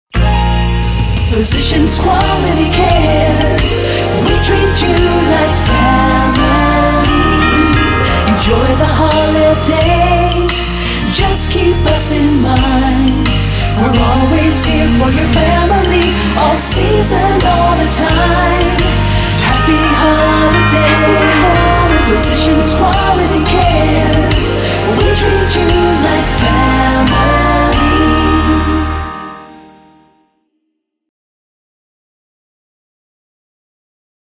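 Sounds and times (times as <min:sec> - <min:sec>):
holiday jingle music: 0:00.1 - 0:30.2.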